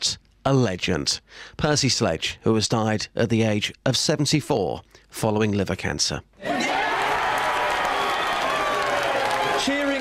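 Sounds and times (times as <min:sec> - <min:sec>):
speech: 0:00.4 - 0:06.6
loud dense crowd cheering: 0:06.4 - 0:10.0
scattered clapping: 0:07.0 - 0:10.0.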